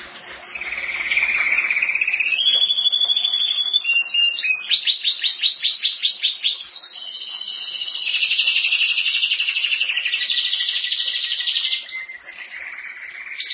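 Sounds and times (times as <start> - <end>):
canary song: 0.0 - 13.5.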